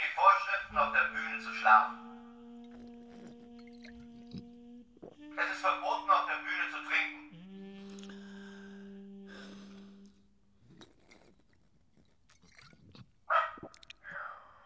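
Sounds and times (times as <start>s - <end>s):
steady low tone: 0.0s - 10.7s
speech: 1.7s - 2.0s
dog barking in a theatre: 13.3s - 14.5s.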